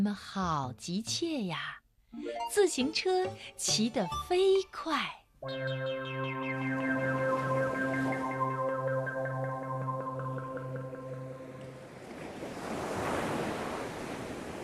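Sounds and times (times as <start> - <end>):
speech: 0.0 - 7.6
steady pulsing musical drone: 5.4 - 12.0
ocean waves breaking on the shore: 6.3 - 14.6.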